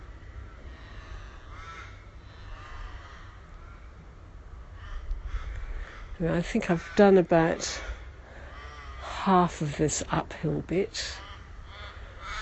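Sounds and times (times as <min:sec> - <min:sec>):
steady low outdoor rumble: 0:00.0 - 0:12.4
crows cawing: 0:00.2 - 0:04.0, 0:04.6 - 0:09.2, 0:11.0 - 0:12.4
speech: 0:06.2 - 0:07.9, 0:09.2 - 0:11.2.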